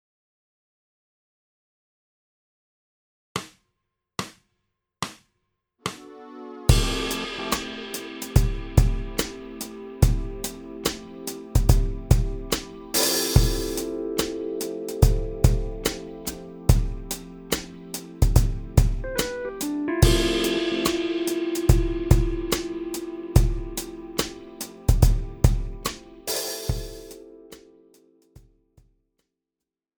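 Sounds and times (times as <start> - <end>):
swing half time shuffle drum beat: 6.7 - 14.4, 15.0 - 27.2.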